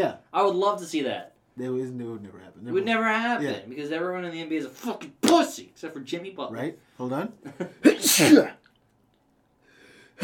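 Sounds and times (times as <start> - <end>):
speech: 0.0 - 8.6
loud sneeze: 7.8 - 8.7
faint breathy noise: 9.6 - 10.2.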